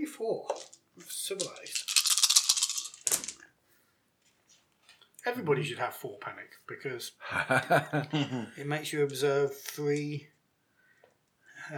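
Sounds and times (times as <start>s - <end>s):
dice rattling and tumbling across a hard tabletop: 0.4s - 3.4s
speech: 5.3s - 10.4s
laughter: 7.2s - 8.6s.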